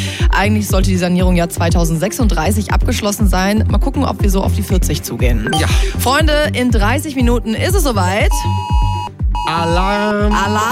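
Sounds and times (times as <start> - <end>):
speech: 0.4 - 8.9, 9.5 - 10.7
loud electronic alarm beeping for a national warning day test in Germany: 5.5 - 6.0, 8.3 - 9.7.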